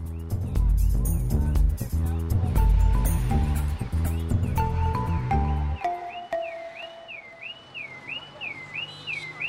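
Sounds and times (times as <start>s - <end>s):
busy music: 0.0s - 7.5s
car alarm with electronic warble: 5.8s - 9.4s.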